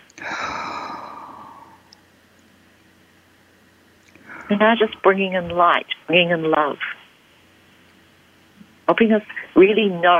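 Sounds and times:
deep breath in and out: 0:00.2 - 0:01.9
speech: 0:04.5 - 0:07.0, 0:08.9 - 0:10.1.

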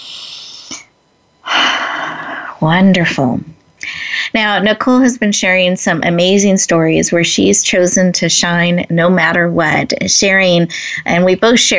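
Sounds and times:
soft breath: 0:00.0 - 0:02.6, 0:03.8 - 0:04.4
speech: 0:02.6 - 0:03.6, 0:04.4 - 0:11.7.

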